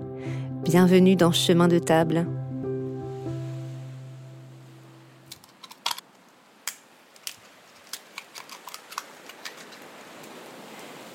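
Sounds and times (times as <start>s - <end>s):
speech: 0.2s - 2.4s
light rain by the sea at Bouin facing the Noirmoutier peninsula: 2.4s - 11.1s.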